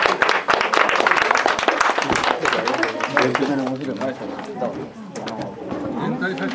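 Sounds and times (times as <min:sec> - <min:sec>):
audience applause of thanks for a teacher and an office manager: 0:00.0 - 0:04.2
speech: 0:03.2 - 0:06.5.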